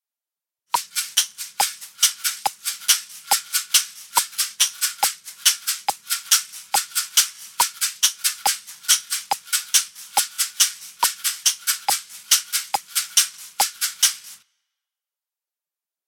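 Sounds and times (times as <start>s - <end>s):
two different caxixi shakers: 0.7s - 14.4s.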